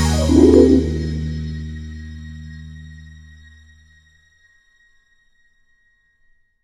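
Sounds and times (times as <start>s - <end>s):
energetic dance music: 0.2s - 1.1s.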